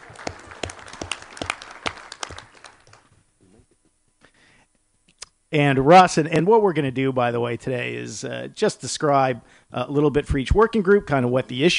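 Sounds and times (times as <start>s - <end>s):
brief applause from a small audience: 0.0s - 3.2s
speech: 5.5s - 11.7s.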